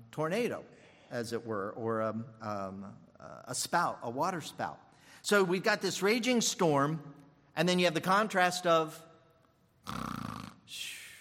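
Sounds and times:
speech: 0.1s - 9.1s, 9.8s - 10.1s
voice imitating snoring: 9.8s - 10.8s.

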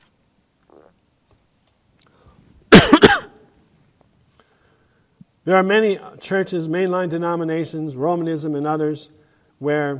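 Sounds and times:
harsh raspy coughs: 2.7s - 3.4s
speech: 5.5s - 9.9s.

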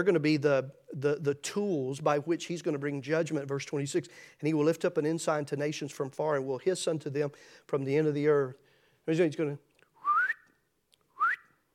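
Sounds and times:
speech: 0.0s - 9.7s
person whistling: 10.0s - 11.6s.

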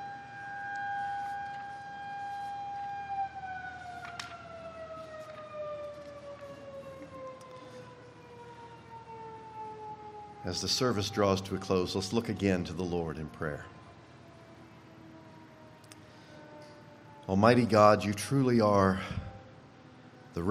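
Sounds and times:
single siren wailing: 0.0s - 20.4s
speech: 10.4s - 13.8s, 17.3s - 19.3s.

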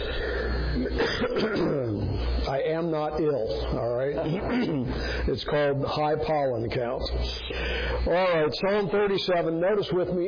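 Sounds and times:
throat clearing with a slight frog in the throat from high pollen count: 0.8s - 2.0s, 4.2s - 5.0s
speech: 0.8s - 10.2s.

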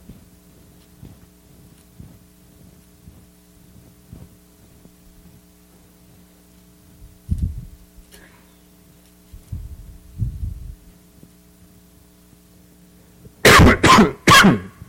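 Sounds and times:
soft rustles: 0.0s - 8.2s, 9.0s - 11.4s
quiet humming room: 0.0s - 14.8s
loud harsh coughs: 13.4s - 14.8s
low throat sounds: 13.5s - 14.8s.

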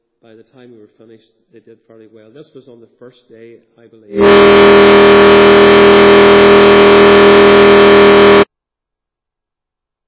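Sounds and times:
speech: 0.2s - 5.3s
boat coming into port with mechanical drone: 4.2s - 8.5s.

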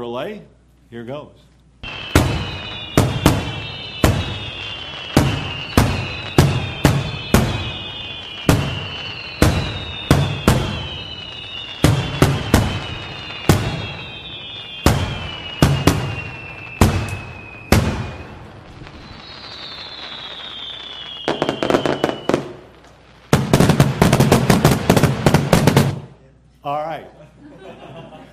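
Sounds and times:
speech: 0.0s - 1.5s
fireworks cracking: 1.8s - 26.2s
whistling rockets rising: 1.8s - 26.2s
laughter: 27.0s - 28.3s.

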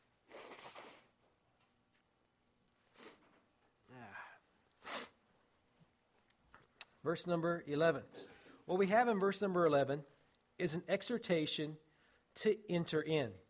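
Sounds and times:
nose blowing: 2.9s - 3.4s, 4.8s - 5.2s
speech: 7.0s - 11.8s, 12.4s - 13.4s.

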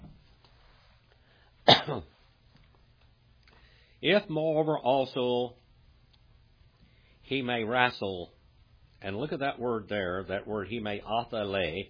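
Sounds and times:
raspy cough from a preacher: 1.6s - 2.1s
rough throat-clearing from a preacher: 1.7s - 2.2s
speech: 1.8s - 2.2s, 4.0s - 5.6s, 7.3s - 8.4s, 9.0s - 11.8s.

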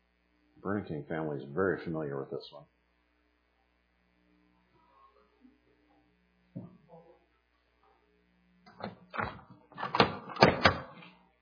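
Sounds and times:
speech: 0.6s - 2.8s
door creaking on its hinges: 8.7s - 11.0s.

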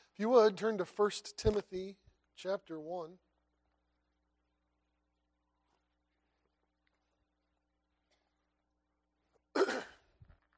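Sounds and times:
speech: 0.2s - 3.2s
throat clearing: 9.5s - 10.2s.

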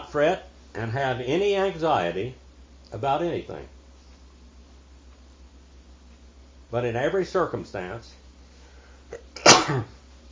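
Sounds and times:
speech: 0.1s - 3.8s, 6.7s - 8.2s, 9.1s - 10.0s
person sneezing with a quick inhaled buildup: 9.1s - 10.0s.

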